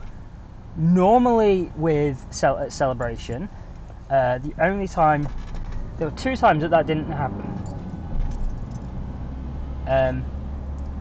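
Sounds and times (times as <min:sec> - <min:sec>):
road traffic rumble: 0:00.0 - 0:10.9
speech: 0:00.8 - 0:05.4, 0:06.0 - 0:07.8, 0:09.9 - 0:10.3
vehicle passing: 0:05.9 - 0:10.9.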